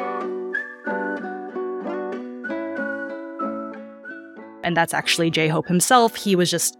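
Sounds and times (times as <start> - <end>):
whistled melody hook in a song: 0.0 - 4.6
steady music backing: 0.0 - 6.7
speech: 4.7 - 6.7.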